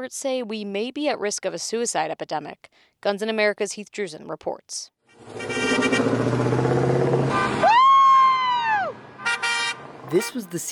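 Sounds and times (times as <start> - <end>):
speech: 0.0 - 6.5, 10.1 - 10.7
rumble of passing traffic: 5.1 - 10.7
many car horns blaring: 5.2 - 7.7, 9.1 - 10.7.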